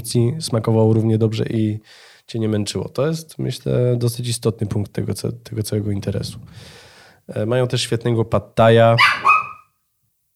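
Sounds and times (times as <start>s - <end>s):
speech: 0.0s - 9.3s
single short dog bark: 9.0s - 9.7s.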